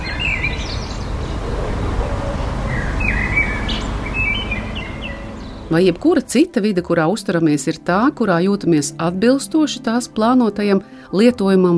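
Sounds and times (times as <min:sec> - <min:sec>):
birds chirping and singing in a yard by a house: 0:00.0 - 0:06.3
steady low rumble of noise: 0:00.0 - 0:09.6
speech: 0:05.7 - 0:11.7.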